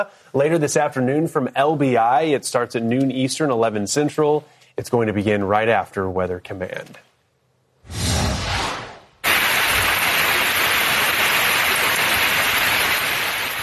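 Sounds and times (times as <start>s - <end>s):
speech: 0.0s - 7.1s
whooshing swell: 7.8s - 9.2s
rain falling: 9.2s - 13.6s.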